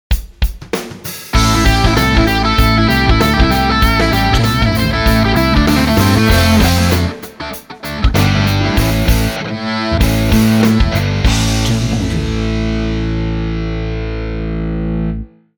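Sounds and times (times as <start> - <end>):
heavy rock action logo jingle: 1.3 - 14.9.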